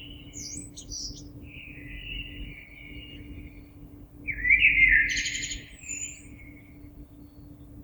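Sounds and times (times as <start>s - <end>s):
common blackbird singing: 0.0s - 3.2s, 4.3s - 6.3s
steady low hum: 0.0s - 7.8s.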